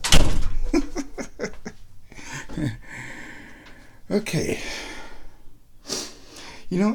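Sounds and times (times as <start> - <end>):
door opening with a sharp thunk: 0.0 - 1.0
breathy laughter: 0.6 - 3.3
speech: 2.6 - 3.0, 4.1 - 4.9, 6.7 - 6.9.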